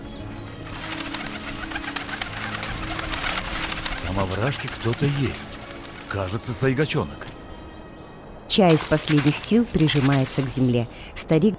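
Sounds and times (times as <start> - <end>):
faint crow calls: 0.0 - 11.5
crows flapping wings over the steppe: 0.5 - 6.8, 8.5 - 11.2
speech: 4.2 - 5.5, 6.1 - 7.4, 8.5 - 11.5.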